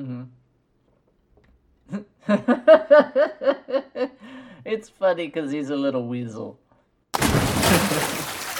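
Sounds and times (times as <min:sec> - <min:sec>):
speech: 0:01.9 - 0:06.6
heavy splash of a man thrown overboard into water: 0:07.2 - 0:08.5.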